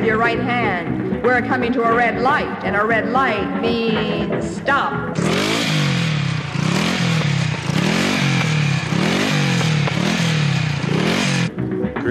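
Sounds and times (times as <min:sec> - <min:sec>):
speech: 0:00.1 - 0:05.8
motorcycle engine revving and stalling: 0:04.8 - 0:11.8.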